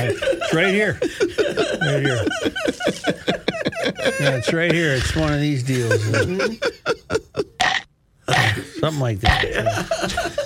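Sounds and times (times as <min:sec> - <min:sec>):
speech: 0:00.0 - 0:06.8, 0:08.8 - 0:10.4
laughter: 0:00.0 - 0:07.6, 0:08.4 - 0:10.4
electronic burp sound effect from a novelty sound button: 0:07.6 - 0:09.7.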